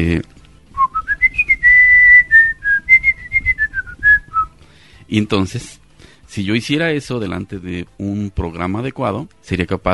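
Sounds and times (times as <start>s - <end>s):
speech: 0.0s - 0.3s, 5.1s - 9.9s
person whistling part of a tune: 0.8s - 4.5s.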